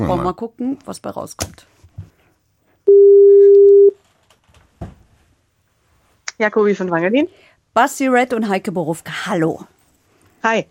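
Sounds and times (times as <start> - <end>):
speech: 0.0 - 1.7, 6.4 - 9.8, 10.4 - 10.6
phone ringback tone on an outgoing call: 2.9 - 4.0.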